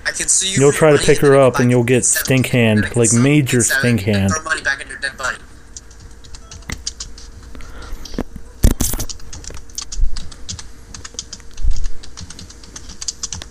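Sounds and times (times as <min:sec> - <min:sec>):
speech: 0:00.1 - 0:05.4
typing on a computer keyboard: 0:05.8 - 0:07.3, 0:08.8 - 0:13.4.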